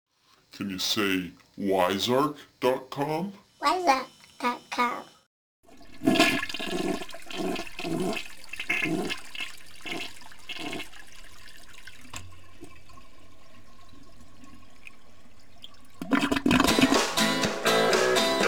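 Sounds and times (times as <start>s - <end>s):
speech: 0.6s - 5.1s
toilet flushing with rushing swirl of water: 5.6s - 18.4s.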